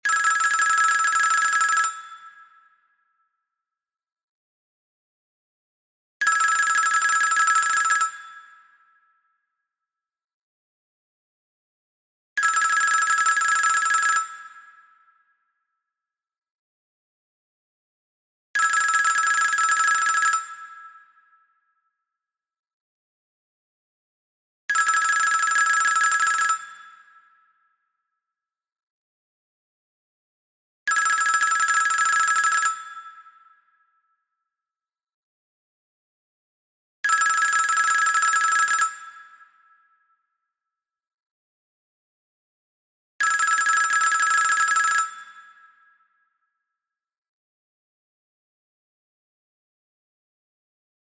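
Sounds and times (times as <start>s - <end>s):
Swiss telephone: 0.1s - 2.0s, 6.2s - 8.2s, 12.4s - 14.4s, 18.6s - 20.6s, 24.8s - 26.7s, 30.9s - 32.8s, 37.1s - 38.9s, 43.2s - 45.2s.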